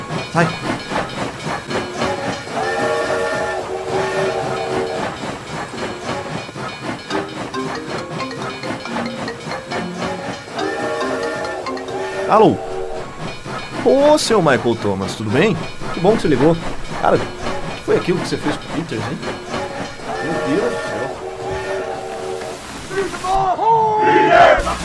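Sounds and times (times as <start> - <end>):
moving steam train rumbling and hissing: 0.0 - 24.8
speech: 0.4 - 0.7, 12.3 - 12.7, 13.8 - 19.4
steam train whistle blasts: 2.5 - 5.2, 10.6 - 14.7, 15.6 - 24.8.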